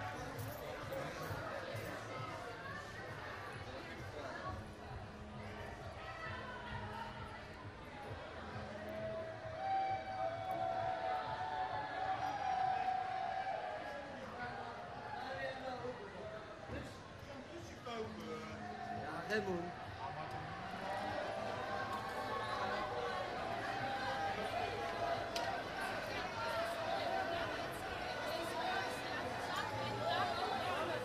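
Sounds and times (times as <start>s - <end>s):
dense street crowd celebrating a football win in The Hague: 0.0s - 31.0s.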